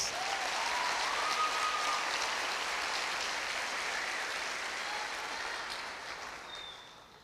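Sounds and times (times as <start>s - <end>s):
large audience applauding: 0.0s - 7.2s.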